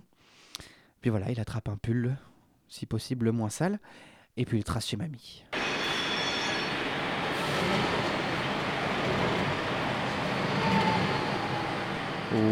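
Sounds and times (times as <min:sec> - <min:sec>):
speech: 0:01.0 - 0:05.6, 0:12.3 - 0:12.5
faint metallic squeals from metro train wheels: 0:05.6 - 0:08.4, 0:10.2 - 0:12.3
metro train in motion rumbling: 0:05.6 - 0:12.5.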